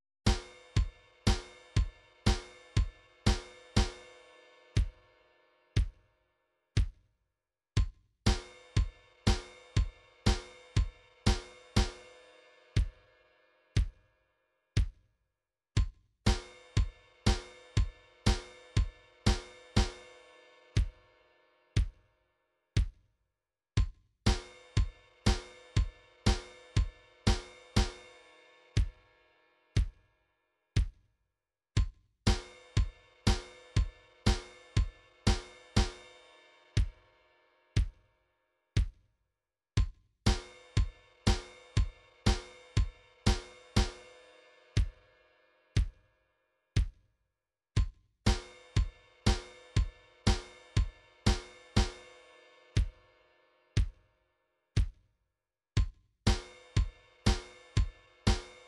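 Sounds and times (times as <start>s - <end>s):
MIDI drums: 0.3s - 5.1s, 5.8s - 6.0s, 6.8s - 7.0s, 7.8s - 13.2s, 13.8s - 14.0s, 14.8s - 15.0s, 15.8s - 21.1s, 21.8s - 22.0s, 22.8s - 23.0s, 23.8s - 29.1s, 29.8s - 30.0s, 30.8s - 31.0s, 31.8s - 37.0s, 37.8s - 38.0s, 38.8s - 39.0s, 39.8s - 45.1s, 45.8s - 46.0s, 46.8s - 47.0s, 47.8s - 53.2s, 53.8s - 54.0s, 54.8s - 55.0s, 55.8s - 58.6s.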